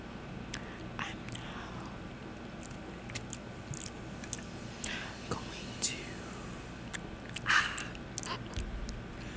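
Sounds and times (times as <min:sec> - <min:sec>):
faint breathy whisper-like noises: 0:00.5 - 0:02.0, 0:04.2 - 0:09.3
wet chewing of pad thai noodles: 0:02.6 - 0:05.2, 0:06.8 - 0:08.7
soft smacking mouth sounds: 0:02.6 - 0:05.6, 0:06.8 - 0:09.0.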